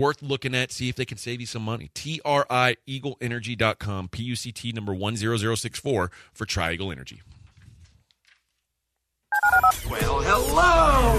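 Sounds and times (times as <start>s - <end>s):
speech: 0.0s - 7.4s, 9.7s - 11.1s
telephone dialing tones: 9.3s - 9.8s.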